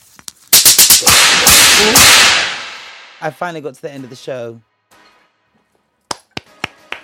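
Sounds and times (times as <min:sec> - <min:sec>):
belt whip cracks sound effect: 0:00.5 - 0:03.2
speech: 0:03.2 - 0:04.7.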